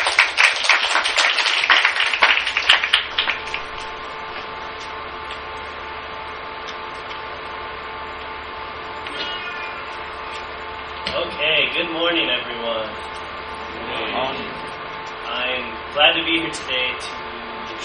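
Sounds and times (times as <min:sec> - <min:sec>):
crowd applauding to welcome a speaker: 0:00.0 - 0:04.2
steady quiet hum: 0:00.0 - 0:17.8.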